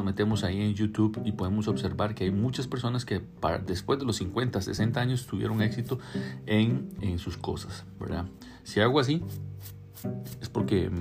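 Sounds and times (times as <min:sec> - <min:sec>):
speech: 0:00.0 - 0:10.9
stubble on a bearded neck being scratched: 0:09.2 - 0:10.6.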